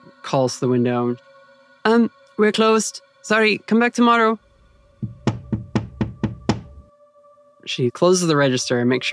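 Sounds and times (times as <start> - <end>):
speech: 0.3 - 4.4, 7.7 - 9.1
knocking on glass of a printing shop door in Portland: 5.0 - 6.7.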